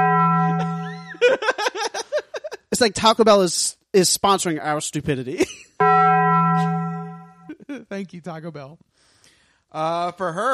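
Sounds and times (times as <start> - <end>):
deep sustained bell dong: 0.0 - 1.2, 5.8 - 7.5
people laughing: 0.8 - 2.7
speech: 2.8 - 5.7, 8.0 - 8.9, 9.7 - 10.5.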